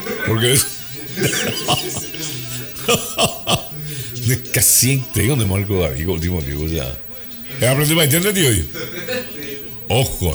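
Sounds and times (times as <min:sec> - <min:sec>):
laughter: 0:00.0 - 0:10.3
speech: 0:00.3 - 0:07.0, 0:07.6 - 0:09.1, 0:09.9 - 0:10.3
short harsh coughs: 0:00.4 - 0:03.8.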